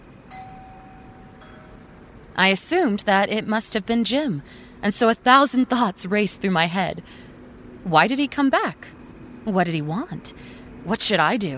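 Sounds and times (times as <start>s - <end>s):
doorbell chime: 0.0s - 2.1s
quiet hum: 0.0s - 11.5s
speech: 2.4s - 7.2s, 7.8s - 11.5s.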